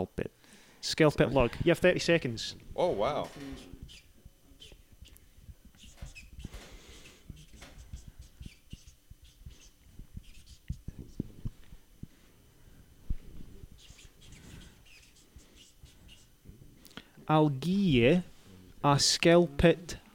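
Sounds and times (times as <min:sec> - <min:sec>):
speech: 0:00.0 - 0:04.0, 0:17.3 - 0:20.0
soft rustles: 0:02.5 - 0:16.3
faint whispering: 0:02.6 - 0:11.7, 0:13.1 - 0:16.3
pen scratching on paper writing an answer: 0:05.8 - 0:11.1, 0:13.8 - 0:16.3.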